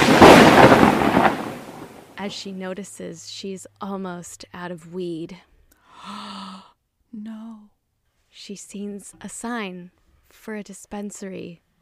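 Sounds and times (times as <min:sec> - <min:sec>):
thunder crash from heavy lightning storm: 0:00.0 - 0:02.4
speech: 0:02.2 - 0:07.7, 0:08.4 - 0:11.6.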